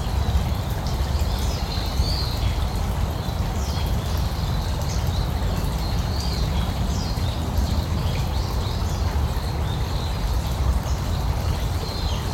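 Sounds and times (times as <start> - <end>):
small stream babbling in a park: 0.0 - 12.3.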